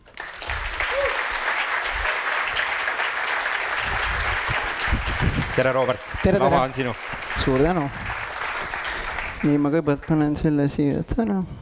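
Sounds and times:
applause from a sizable audience welcoming a speaker onto a stage: 0.0 - 10.4
person cheering: 0.8 - 1.5
speech: 5.6 - 8.1, 9.4 - 11.6.

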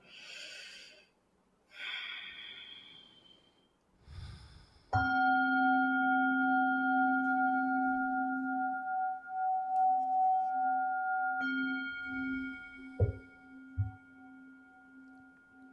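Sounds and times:
slow deep breathing during a guided yoga practice: 0.0 - 5.0
steady ringing tone: 5.0 - 15.7.

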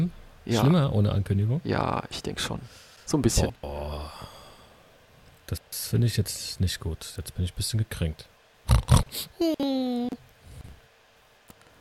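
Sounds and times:
speech: 0.0 - 4.3, 5.5 - 9.8
voice imitating a grunting pig-like animal: 8.7 - 10.2.

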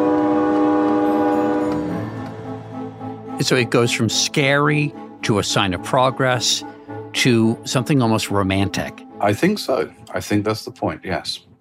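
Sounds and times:
steam train whistle: 0.0 - 2.9
low rumble of moving steam train: 0.0 - 9.8
speech: 3.4 - 11.5.

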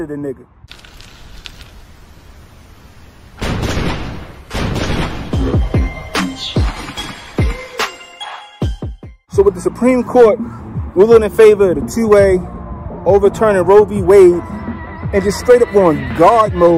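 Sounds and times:
speech: 0.0 - 0.8, 9.4 - 16.7
cannon fire: 3.4 - 5.4.

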